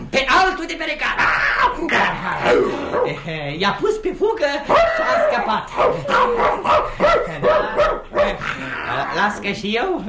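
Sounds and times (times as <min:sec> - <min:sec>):
speech: 0:00.2 - 0:10.0
dog barking: 0:02.9 - 0:03.2, 0:04.7 - 0:08.5.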